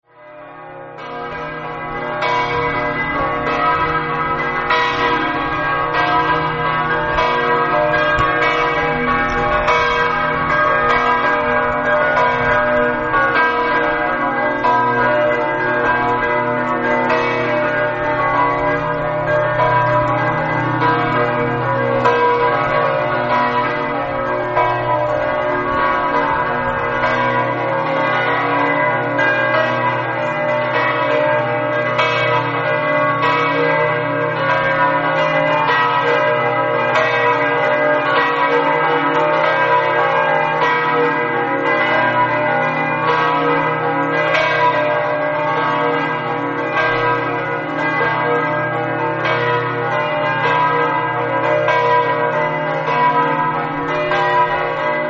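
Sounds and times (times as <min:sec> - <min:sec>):
bells ringing in Gruagno: 0:00.2 - 0:55.0.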